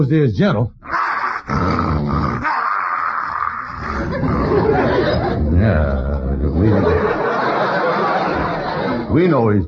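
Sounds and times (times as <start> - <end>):
speech: 0.0 - 2.6, 3.9 - 7.2, 9.1 - 9.6
German shepherd growling and snarling: 0.9 - 5.2
laughter: 3.8 - 9.2.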